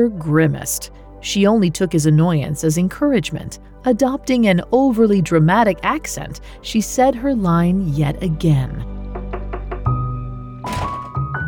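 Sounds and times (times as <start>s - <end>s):
speech: 0.0s - 9.0s
heavy knocks pounding on a door: 9.2s - 11.4s.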